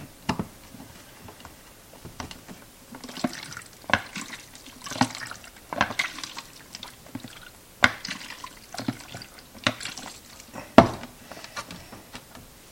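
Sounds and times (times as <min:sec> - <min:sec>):
liquid sloshing in an inverted closed film developing tank: 0:02.9 - 0:10.6.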